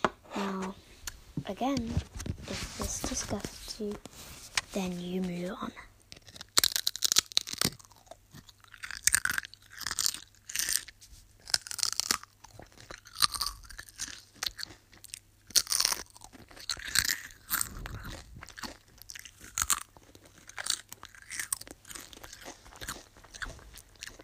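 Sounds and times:
speech: 0:01.5 - 0:05.9
Pringles crisps being crunched and chewed: 0:05.1 - 0:24.2.

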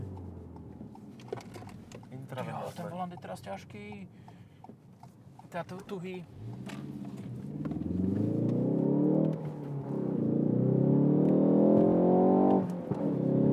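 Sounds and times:
car engine revving and growling: 0:00.0 - 0:01.9, 0:06.2 - 0:13.5
speech: 0:02.4 - 0:04.3, 0:05.5 - 0:06.9.

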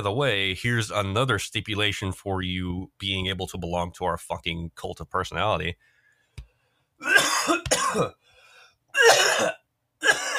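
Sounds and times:
speech: 0:00.0 - 0:05.9, 0:07.0 - 0:08.2, 0:09.0 - 0:10.2
person clearing throat: 0:07.0 - 0:08.2, 0:09.0 - 0:10.3
raspy coughs: 0:07.0 - 0:08.2, 0:08.9 - 0:10.3.

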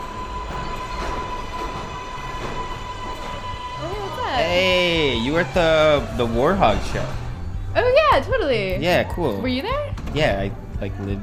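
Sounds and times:
high whine: 0:00.0 - 0:10.3
rising squeal: 0:00.0 - 0:11.2
subway car in motion at night rumbling: 0:00.0 - 0:11.2
speech: 0:04.4 - 0:11.2.

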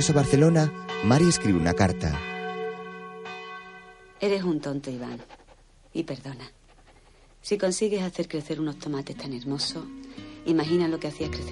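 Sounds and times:
speech: 0:00.0 - 0:02.3, 0:04.2 - 0:05.4, 0:06.0 - 0:06.6, 0:07.4 - 0:11.4
village church bells ringing: 0:00.0 - 0:04.9.

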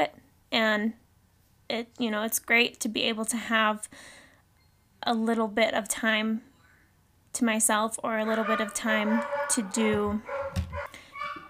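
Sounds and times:
speech: 0:00.0 - 0:01.0, 0:01.7 - 0:04.2, 0:05.0 - 0:06.5, 0:07.3 - 0:10.4
dogs barking and yipping at a cat: 0:08.2 - 0:11.4.

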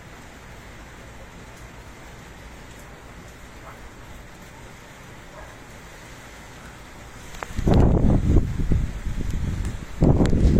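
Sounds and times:
rain pattering after a thunderstorm: 0:00.0 - 0:10.5
low gusty rumble: 0:07.3 - 0:10.5.

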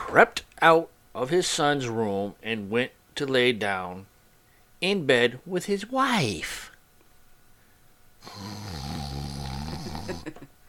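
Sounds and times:
speech: 0:00.1 - 0:04.1, 0:04.8 - 0:06.7, 0:08.2 - 0:08.9
woman snoring in bed: 0:08.2 - 0:10.4.

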